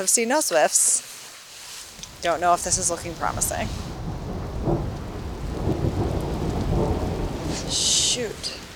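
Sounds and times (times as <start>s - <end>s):
speech: 0.0s - 1.2s, 2.2s - 3.9s, 7.7s - 8.6s
steady hiss of rain: 0.0s - 8.7s
thunder rumbling during pre-dawn storm: 1.9s - 8.7s.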